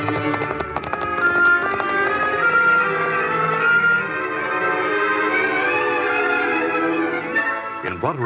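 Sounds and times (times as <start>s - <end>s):
horses galloping off along a back trail: 0.0s - 2.8s
orchestral music: 0.0s - 8.2s.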